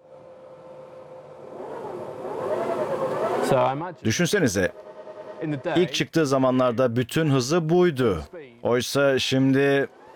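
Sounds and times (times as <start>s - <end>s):
motor cooling fan whirring: 0.0s - 10.1s
motor running: 1.0s - 6.0s, 9.3s - 10.1s
speech: 3.5s - 4.8s, 5.4s - 10.0s.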